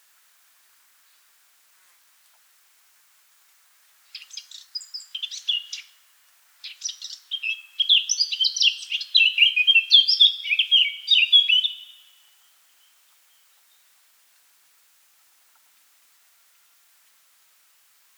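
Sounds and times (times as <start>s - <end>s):
Eurasian blackcap song: 4.1s - 14.0s.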